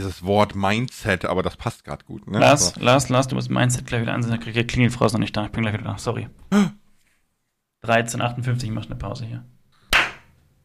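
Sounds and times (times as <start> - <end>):
speech: 0.0 - 6.8, 7.8 - 9.6
hand clap at the microphone: 9.9 - 10.3.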